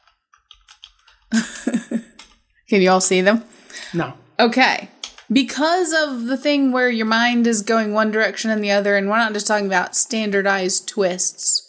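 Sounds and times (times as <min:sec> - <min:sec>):
typing on a computer keyboard: 0:00.0 - 0:02.5
speech: 0:01.3 - 0:01.8, 0:02.7 - 0:11.6.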